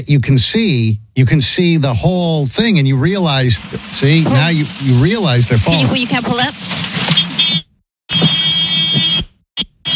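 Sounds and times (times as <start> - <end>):
speech: 0.0 - 7.3
loud buzzy horn-like warning alarm blasts: 5.7 - 9.9.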